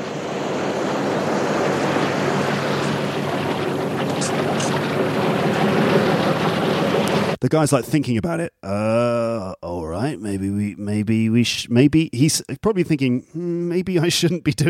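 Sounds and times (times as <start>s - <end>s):
boat cutting across open ocean water: 0.0s - 7.4s
wind: 0.0s - 7.4s
speech: 7.5s - 14.6s.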